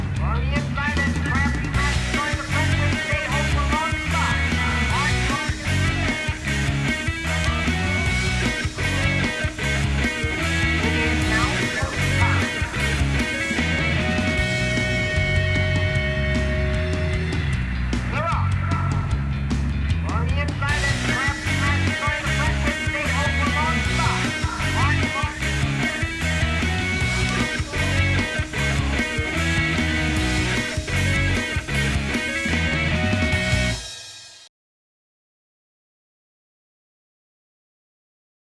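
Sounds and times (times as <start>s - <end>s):
pop song: 0.2s - 17.4s, 18.0s - 19.1s, 19.9s - 33.7s.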